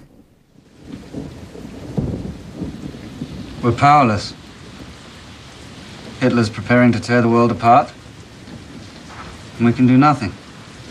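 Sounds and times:
heavy rain falling outside: 0:00.0 - 0:10.8
speech: 0:03.6 - 0:04.4, 0:06.2 - 0:08.0, 0:09.6 - 0:10.4.

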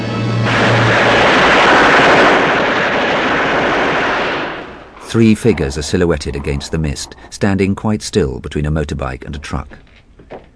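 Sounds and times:
heavy machine gun firing: 0:00.4 - 0:05.0
speech: 0:05.1 - 0:09.9.

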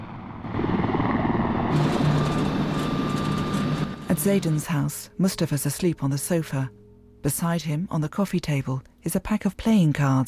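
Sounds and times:
helicopter flying over Baghdad: 0:00.0 - 0:05.8
speech: 0:04.2 - 0:10.2.

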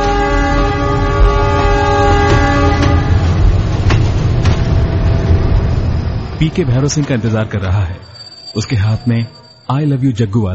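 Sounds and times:
train horn: 0:00.0 - 0:05.3
train arriving at a station platform: 0:00.0 - 0:10.3
speech: 0:06.4 - 0:10.5.

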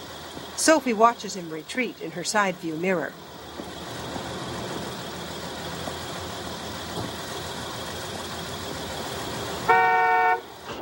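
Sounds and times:
engine and road rumble of cars and trucks: 0:00.0 - 0:10.8
speech: 0:00.6 - 0:03.7
car horn blasting impatiently in traffic: 0:09.6 - 0:10.6.

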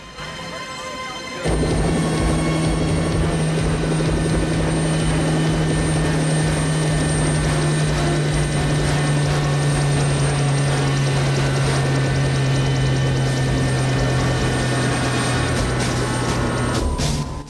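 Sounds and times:
helicopter coming in to land at an airport: 0:00.0 - 0:17.4.

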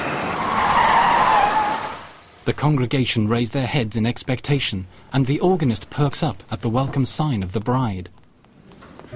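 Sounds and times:
car tires screeching in a skid to a halt: 0:00.0 - 0:02.2
speech: 0:02.5 - 0:08.2.

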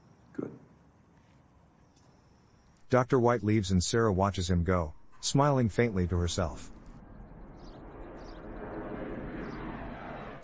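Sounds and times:
speech: 0:02.9 - 0:06.7
plane flying overhead: 0:03.3 - 0:10.4.

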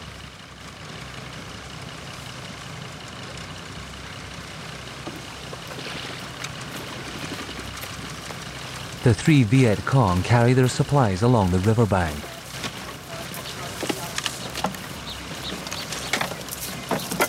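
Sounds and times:
motorboat engine running on a river: 0:00.0 - 0:17.2
speech: 0:09.0 - 0:12.3.

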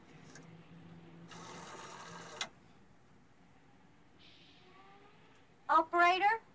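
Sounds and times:
rotary phone dial whirring: 0:01.3 - 0:02.6.

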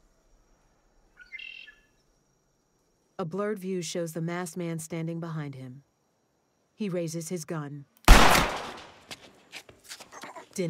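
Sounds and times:
faint steady hiss: 0:00.0 - 0:10.6
bluebird chirping on a metal chair frame: 0:01.1 - 0:02.2
speech: 0:03.2 - 0:05.9, 0:06.8 - 0:08.5.

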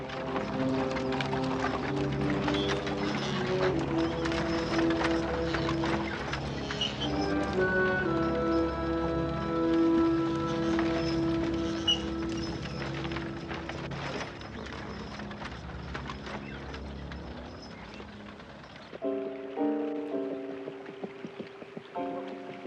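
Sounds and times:
horse hooves clip-clopping in Pleasant Valley: 0:00.0 - 0:22.6
horse-drawn wagon wheels rattling and creaking: 0:00.0 - 0:22.6.

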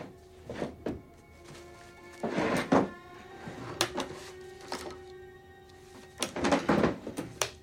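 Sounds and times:
office desk drawers opening and closing: 0:02.0 - 0:05.1, 0:05.9 - 0:07.5.

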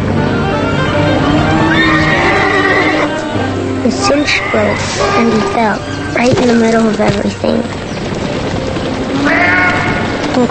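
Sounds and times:
dense loud continuous wash of noise: 0:00.0 - 0:10.4
spooked horse whinnying and bucking: 0:01.4 - 0:03.2, 0:04.1 - 0:06.2, 0:09.1 - 0:10.3
speech: 0:03.9 - 0:07.8.

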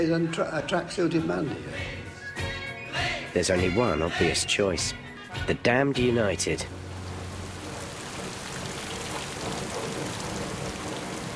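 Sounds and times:
speech: 0:00.0 - 0:02.0, 0:03.4 - 0:06.8
steady rain pouring on an open outdoor surface: 0:06.7 - 0:11.3.

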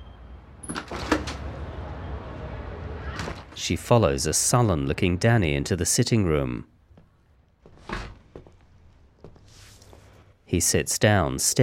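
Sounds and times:
door opening with latch clicks and a soft thump: 0:00.6 - 0:01.6, 0:07.8 - 0:08.3
speech: 0:03.6 - 0:06.8, 0:10.5 - 0:11.6.

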